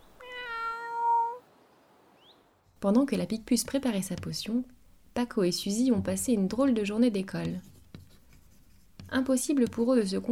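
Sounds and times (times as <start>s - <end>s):
cat meowing from the branch of an old oak tree: 0.2s - 1.4s
speech: 2.8s - 7.7s, 9.1s - 10.3s.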